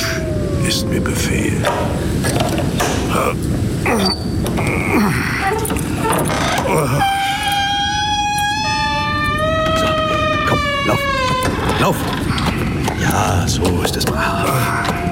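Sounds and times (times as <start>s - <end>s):
speech: 0.7s - 7.3s, 11.8s - 12.2s, 13.1s - 15.0s
courtyard gate hinges creaking open: 3.9s - 15.1s.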